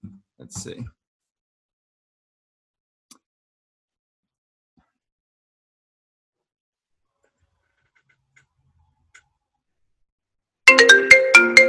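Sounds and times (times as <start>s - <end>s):
speech: 0.5s - 1.0s
mobile phone ringtone: 10.7s - 11.6s.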